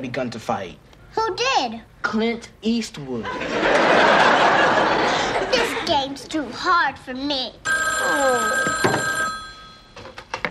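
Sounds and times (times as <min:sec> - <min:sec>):
speech: 0:00.0 - 0:08.9
laughter: 0:03.2 - 0:06.0
electronic home telephone ringing with warbling pattern: 0:07.6 - 0:10.2.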